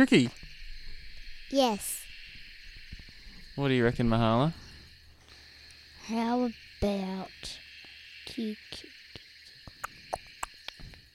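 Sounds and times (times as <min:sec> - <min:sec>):
speech: 0:00.0 - 0:00.4, 0:01.5 - 0:02.0, 0:03.6 - 0:04.6, 0:06.1 - 0:07.6, 0:08.3 - 0:09.0
frog croaking: 0:00.0 - 0:11.1
high insect drone: 0:00.0 - 0:11.1
clicks and chirps from a nighttime chorus: 0:09.1 - 0:11.1.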